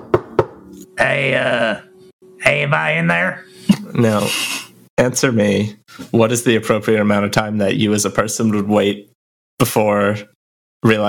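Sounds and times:
knocking on a door: 0:00.0 - 0:00.6
speech: 0:01.0 - 0:11.0.

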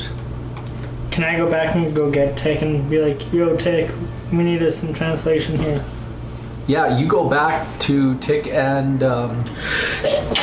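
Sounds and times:
speech: 0:01.2 - 0:06.0, 0:06.7 - 0:10.4
person sneezing: 0:09.8 - 0:10.4.

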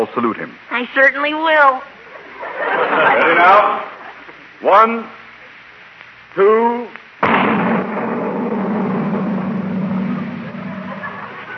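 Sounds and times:
speech: 0:00.0 - 0:01.9, 0:02.6 - 0:03.9, 0:04.6 - 0:05.2, 0:06.3 - 0:07.0
laughter: 0:02.0 - 0:04.5, 0:10.1 - 0:11.5
cannon-like blast of a giant firecracker with roaring rumble: 0:07.2 - 0:11.5.

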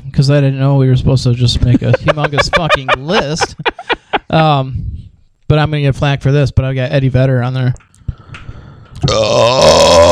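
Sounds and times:
speech: 0:00.2 - 0:03.7, 0:04.3 - 0:04.9, 0:05.5 - 0:07.9, 0:09.0 - 0:10.0
laughter: 0:01.6 - 0:04.5
loud deep rumbling raspy burp: 0:09.0 - 0:10.0.

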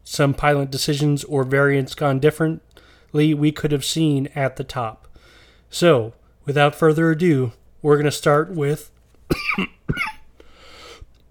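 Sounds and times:
speech: 0:00.1 - 0:05.1, 0:05.7 - 0:09.7
raspy breath: 0:02.8 - 0:03.1, 0:05.1 - 0:05.7, 0:10.4 - 0:11.2
sharp coughs: 0:09.3 - 0:10.3.

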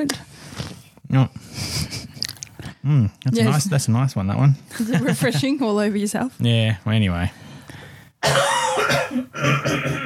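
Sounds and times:
speech: 0:00.0 - 0:00.3, 0:01.1 - 0:02.0, 0:02.8 - 0:07.5, 0:09.2 - 0:10.0
harsh raspy cough: 0:08.2 - 0:10.0.

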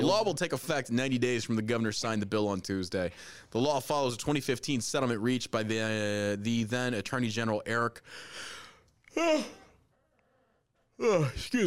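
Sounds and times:
speech: 0:00.1 - 0:08.6, 0:09.2 - 0:09.6, 0:11.0 - 0:11.6
person yawning: 0:09.1 - 0:09.8, 0:11.0 - 0:11.4.

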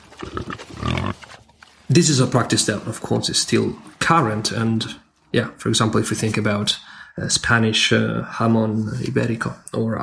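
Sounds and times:
pig grunting: 0:00.0 - 0:01.4
speech: 0:01.9 - 0:10.0.

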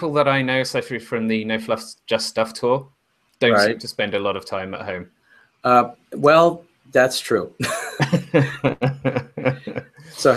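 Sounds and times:
speech: 0:00.0 - 0:10.3
laughter: 0:03.5 - 0:03.8, 0:07.6 - 0:10.3
loud fit of rough voiced coughing: 0:07.7 - 0:09.8.

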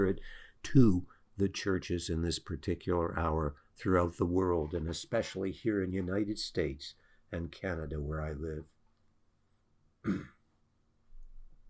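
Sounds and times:
speech: 0:00.0 - 0:08.8, 0:10.0 - 0:10.4
person clearing throat: 0:10.0 - 0:10.5.

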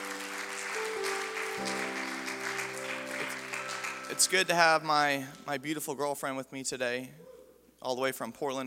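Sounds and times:
audience clapping in praise: 0:00.0 - 0:05.5
organ or keyboard chords: 0:00.0 - 0:05.7
speech: 0:04.1 - 0:08.6.

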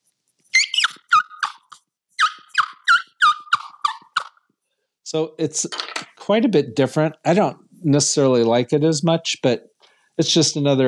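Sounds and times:
wild turkey wing bone suction hunting call yelps: 0:00.5 - 0:04.4
speech: 0:05.1 - 0:10.8.

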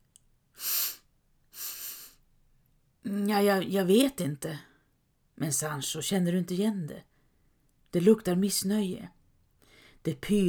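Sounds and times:
deep hissing breath drawn in through the nose: 0:00.6 - 0:02.2
speech: 0:03.0 - 0:04.7, 0:05.4 - 0:07.1, 0:07.9 - 0:09.2, 0:10.0 - 0:10.4.

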